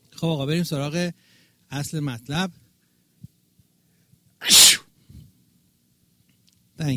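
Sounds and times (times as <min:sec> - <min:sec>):
speech: 0:00.2 - 0:02.6
sneeze: 0:04.4 - 0:04.9.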